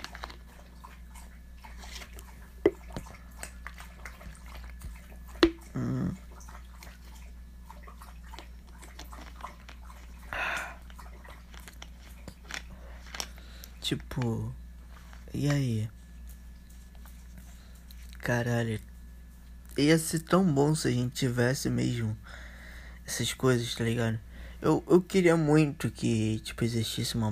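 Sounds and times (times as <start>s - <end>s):
pet lapping drinking water: 0.0s - 13.7s
low hum: 0.0s - 27.3s
speech: 13.9s - 14.6s, 15.3s - 16.0s, 18.3s - 18.9s, 19.8s - 22.4s, 23.1s - 27.3s.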